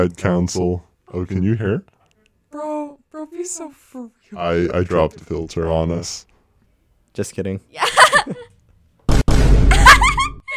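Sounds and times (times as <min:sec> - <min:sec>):
speech: 0:00.0 - 0:01.9, 0:02.5 - 0:06.3, 0:07.2 - 0:08.3
deep booming meme sound effect hit with low heavy rumble: 0:09.1 - 0:09.9.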